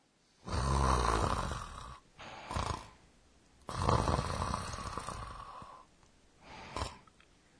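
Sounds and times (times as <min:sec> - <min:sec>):
loud snoring with rattling inhales: 0:00.4 - 0:03.0, 0:03.7 - 0:05.9, 0:06.5 - 0:07.1.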